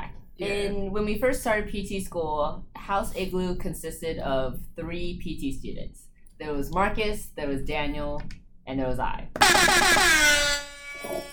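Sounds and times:
speech: 0.4 - 11.3
loud blaring air horn blast: 9.4 - 11.3.

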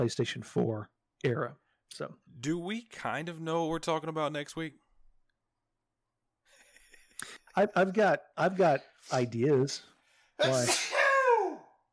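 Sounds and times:
speech: 0.0 - 4.8, 7.2 - 10.8
single loud sneeze: 10.4 - 11.6.

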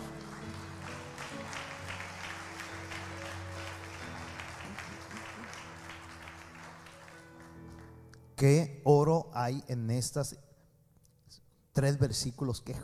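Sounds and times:
audience applauding: 0.0 - 8.0
speech: 8.4 - 10.5, 11.8 - 12.8.

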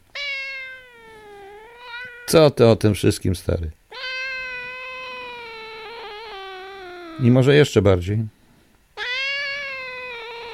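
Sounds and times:
cat meowing: 0.1 - 2.4, 3.9 - 7.4, 9.0 - 10.5
speech: 2.3 - 3.8, 7.2 - 8.4.

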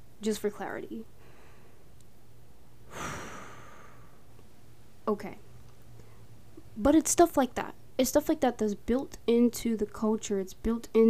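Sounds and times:
faint steady hum: 0.0 - 11.0
speech: 0.2 - 1.2, 5.1 - 5.5, 6.8 - 11.0
deep breath: 1.2 - 1.9, 2.9 - 4.3.

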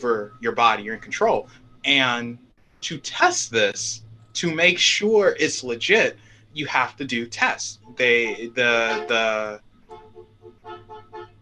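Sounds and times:
speech: 0.0 - 9.6
low engine rumble: 0.0 - 11.3
car horn honking outside: 7.8 - 11.3.

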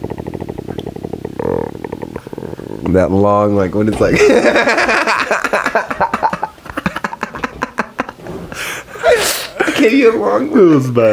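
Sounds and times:
stomach rumbling: 0.0 - 8.6
speech: 2.9 - 5.0, 9.8 - 11.1
laughter: 4.0 - 10.2.

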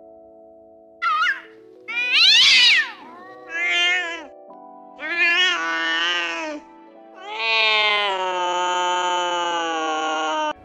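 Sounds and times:
cat meowing begging for food: 1.0 - 4.3, 5.0 - 6.6, 7.2 - 10.6.

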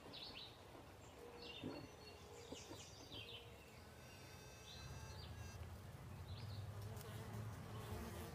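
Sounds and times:
birds chirping and twittering: 0.0 - 6.7
bee buzzing in flight: 3.8 - 5.6, 6.8 - 8.3.

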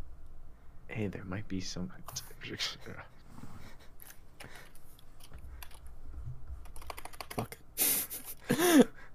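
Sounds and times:
speech: 0.9 - 3.1, 8.5 - 8.9
typing on a computer keyboard: 4.5 - 5.9, 6.6 - 7.5.

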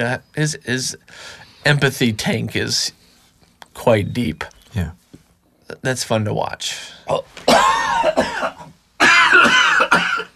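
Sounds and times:
speech: 0.0 - 3.0, 3.8 - 5.0, 5.7 - 8.5
person coughing after inhaling a mosquito: 7.1 - 10.3.

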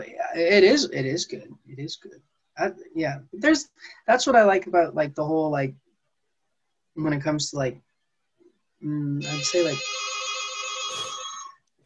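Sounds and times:
speech: 0.0 - 5.8, 7.0 - 7.8, 8.8 - 10.0
phone text message tone with bright electronic tones: 9.2 - 11.5.

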